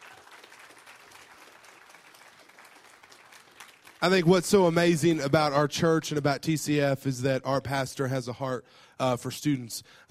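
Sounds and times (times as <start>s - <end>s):
crowd applauding: 0.0s - 4.4s
speech: 4.0s - 10.1s.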